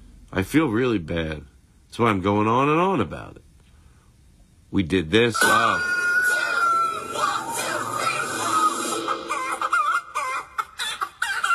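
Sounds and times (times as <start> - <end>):
speech: 0.3 - 3.4, 4.7 - 6.0
person imitating chicken clucking: 5.4 - 11.5.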